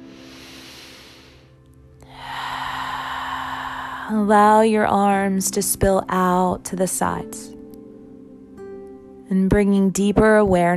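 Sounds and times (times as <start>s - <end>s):
deep inhale and exhale breathing during a guided intention-setting session: 0.0s - 4.3s
speech: 4.1s - 7.6s, 9.3s - 10.7s.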